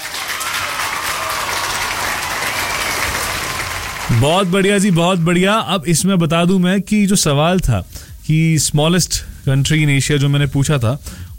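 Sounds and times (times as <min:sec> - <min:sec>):
crowd applause: 0:00.0 - 0:05.6
speech: 0:04.2 - 0:11.3.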